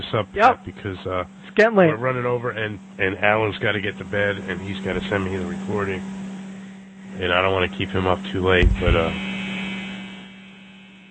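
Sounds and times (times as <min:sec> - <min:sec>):
speech: 0:00.1 - 0:06.2, 0:07.2 - 0:09.3
clothes dryer buzzer signalling the laundry is done: 0:03.7 - 0:11.1.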